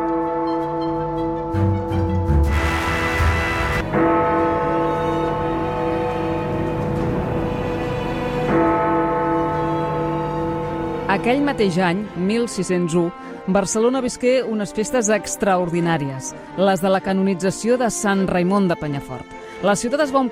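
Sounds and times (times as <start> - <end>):
church bells ringing: 0.0 - 13.2
speech: 11.2 - 20.3.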